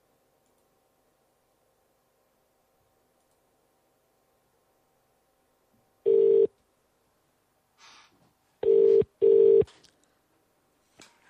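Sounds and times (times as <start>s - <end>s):
electronic telephone beeps: 6.1s - 6.5s, 8.6s - 9.7s.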